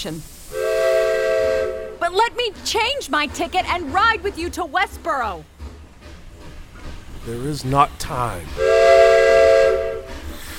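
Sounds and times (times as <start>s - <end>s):
speech: 0.0s - 0.4s, 2.1s - 5.6s, 7.2s - 9.1s
steam train hissing steam: 0.0s - 3.8s, 5.5s - 10.5s
steam train rumble: 0.0s - 10.5s
steam train whistle as the train departs the station: 0.4s - 2.1s, 8.6s - 10.5s.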